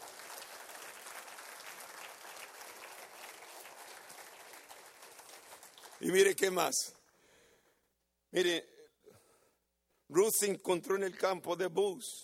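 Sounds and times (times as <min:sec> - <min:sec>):
crowd clapping during a sermon: 0:00.0 - 0:06.8
speech: 0:06.0 - 0:07.0, 0:08.3 - 0:08.7, 0:10.1 - 0:12.2.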